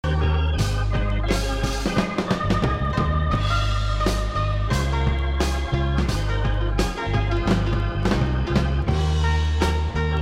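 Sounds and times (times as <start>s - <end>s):
gospel music: 0.0s - 10.1s.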